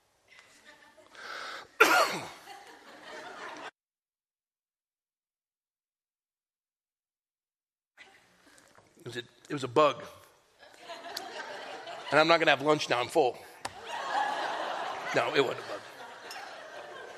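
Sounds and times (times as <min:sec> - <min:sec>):
harsh coughing fit: 0:01.8 - 0:02.5
laughter: 0:02.1 - 0:03.7, 0:10.6 - 0:13.0, 0:13.7 - 0:17.1
speech: 0:09.1 - 0:10.2, 0:12.1 - 0:13.4, 0:15.1 - 0:15.8.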